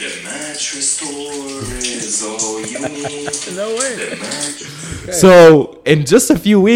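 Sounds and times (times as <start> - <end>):
running shower water: 0.0 - 5.5
speech: 0.6 - 6.7
person vocalizing and laughing: 2.5 - 4.8.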